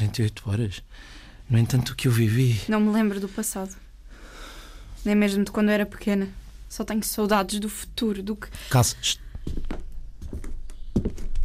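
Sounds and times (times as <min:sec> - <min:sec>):
speech: 0:00.1 - 0:03.8, 0:05.0 - 0:09.8
footsteps of someone coming back home: 0:09.3 - 0:11.4.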